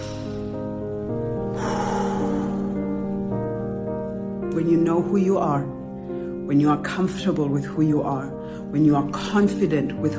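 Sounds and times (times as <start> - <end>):
soft sustained tonal music: 0.0 - 10.1
deep breath: 1.5 - 3.3
speech: 4.6 - 5.8, 6.5 - 10.1.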